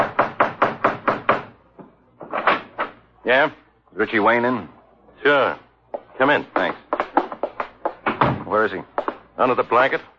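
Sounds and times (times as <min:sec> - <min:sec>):
firm knocking on a door: 0:00.0 - 0:01.5, 0:06.6 - 0:09.2
speech: 0:03.2 - 0:06.8, 0:08.5 - 0:10.1.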